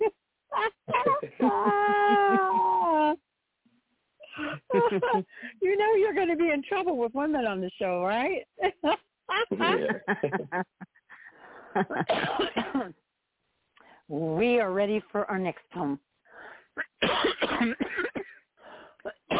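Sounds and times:
person coughing: 0:00.9 - 0:02.9, 0:09.5 - 0:10.1, 0:12.0 - 0:13.0, 0:16.8 - 0:18.4, 0:19.1 - 0:19.3
laughter: 0:00.9 - 0:03.1, 0:04.4 - 0:05.3, 0:08.7 - 0:11.0, 0:11.6 - 0:12.1
speech: 0:04.9 - 0:09.0, 0:09.6 - 0:10.8, 0:11.8 - 0:13.0, 0:14.1 - 0:16.1.

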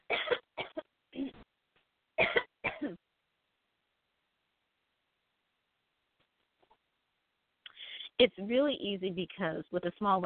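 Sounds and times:
person coughing harshly and dryly: 0:00.1 - 0:01.4, 0:02.2 - 0:03.0
speech: 0:08.2 - 0:10.2.

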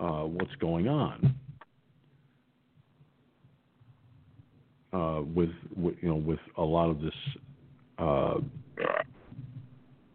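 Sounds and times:
faint hum: 0:00.0 - 0:10.1
speech: 0:00.3 - 0:01.4, 0:04.9 - 0:07.4, 0:08.0 - 0:09.0
loud burp after a burrito dinner: 0:08.8 - 0:09.1.

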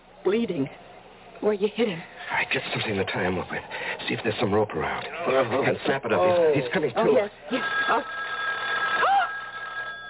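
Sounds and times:
speech: 0:00.2 - 0:08.2
telephone ringing with electric trill: 0:07.1 - 0:10.0.

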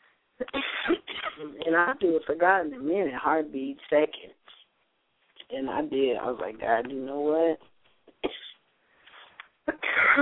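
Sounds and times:
person coughing dryly: 0:00.4 - 0:01.5, 0:08.1 - 0:08.6, 0:09.7 - 0:10.2
speech: 0:01.7 - 0:04.4, 0:05.5 - 0:08.4.

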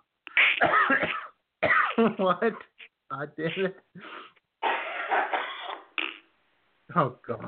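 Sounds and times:
harsh raspy coughing: 0:00.3 - 0:02.8, 0:04.6 - 0:06.2
speech: 0:02.0 - 0:04.2, 0:06.9 - 0:07.4.

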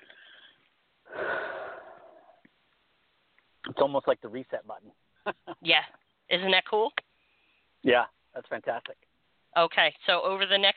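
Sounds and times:
deep breath in and out: 0:00.0 - 0:02.4
speech: 0:03.8 - 0:07.0, 0:07.8 - 0:10.7.

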